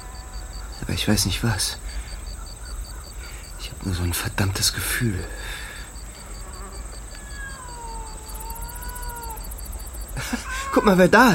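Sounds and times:
faint regular insect-like chirping: 0.0 - 11.3
steady hum: 0.0 - 11.3
speech: 0.8 - 1.9, 3.8 - 5.6, 10.3 - 11.3
cat meowing: 7.1 - 9.5, 10.3 - 11.2
laughter: 10.1 - 11.3.

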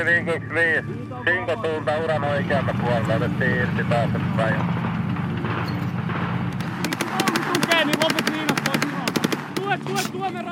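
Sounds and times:
speech: 0.0 - 4.8, 7.8 - 8.9, 9.7 - 10.5
lingering rumble: 1.3 - 10.5
explosive charges detonating during military exercise: 4.7 - 9.8.

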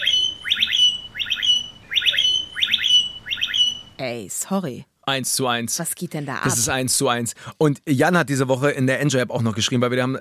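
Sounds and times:
blackbirds mimicking an e-scooter alarm: 0.0 - 4.2
speech: 4.0 - 10.2.

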